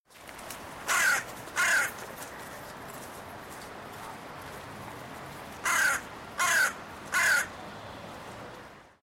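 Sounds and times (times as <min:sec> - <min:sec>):
hooded crow calling: 0:00.9 - 0:02.6, 0:05.6 - 0:07.5.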